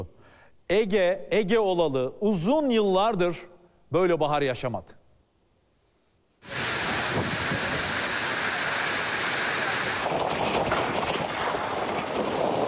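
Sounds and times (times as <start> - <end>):
speech: 0.0 - 5.0
heavy downpour with hail and storm: 6.4 - 12.6.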